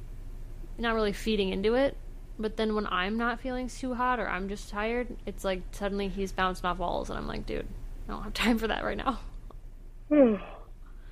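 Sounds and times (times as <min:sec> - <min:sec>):
speech: 0:00.8 - 0:09.3, 0:10.1 - 0:10.6
person yawning: 0:10.1 - 0:10.7.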